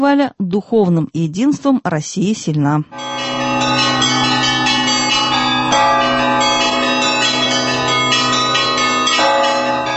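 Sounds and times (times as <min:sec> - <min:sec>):
speech: 0:00.0 - 0:03.4
church bells pealing: 0:02.9 - 0:09.9.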